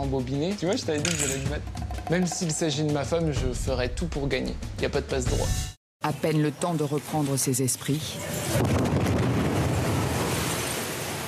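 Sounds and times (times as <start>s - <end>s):
speech: 0.1s - 8.9s
outdoor explosion with heavy rumbling roar and deep boom: 8.6s - 10.8s.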